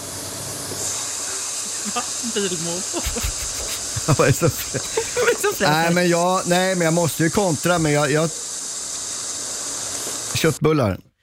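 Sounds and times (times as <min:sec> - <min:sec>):
beef tenderloin sizzling in a hot pan: 0:00.0 - 0:10.6
laughter: 0:01.6 - 0:06.0
speech: 0:02.0 - 0:08.4, 0:10.4 - 0:11.1.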